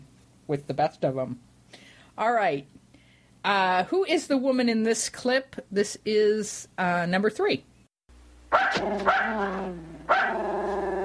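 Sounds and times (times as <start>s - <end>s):
speech: 0.5s - 1.5s, 2.2s - 2.8s, 3.4s - 7.7s, 8.5s - 10.6s
dog barking with high-pitched yelping barks: 8.5s - 11.0s.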